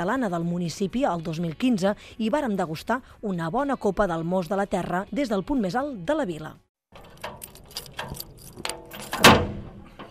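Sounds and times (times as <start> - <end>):
speech: 0.0 - 6.6
small iron door being opened: 6.9 - 10.0.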